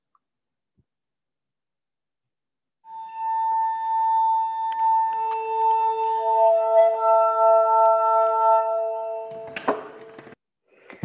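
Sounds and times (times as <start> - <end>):
solo glass harmonica sustaining ringing tones: 2.9 - 10.2.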